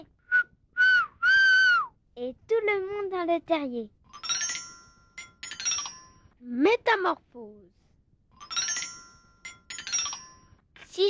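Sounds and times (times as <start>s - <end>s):
person whistling an imitation of a marmot alarm call: 0.3s - 1.9s
speech: 3.2s - 4.0s, 6.4s - 7.8s.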